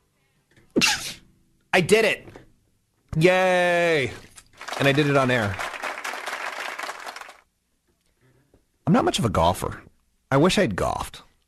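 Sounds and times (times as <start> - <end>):
person sneezing: 0.7 - 1.2
speech: 1.8 - 2.3, 3.2 - 5.6, 8.9 - 11.2.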